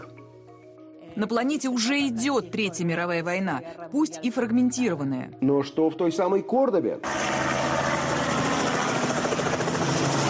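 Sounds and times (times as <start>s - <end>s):
speech: 1.2s - 7.4s
helicopter in flight with rotor chop and engine whine: 7.0s - 10.2s.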